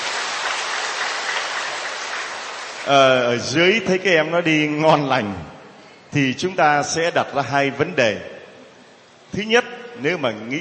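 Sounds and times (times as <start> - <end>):
audience applause at a group exercise: 0.0 - 3.0
speech: 2.8 - 5.5, 6.1 - 8.3, 9.3 - 10.5.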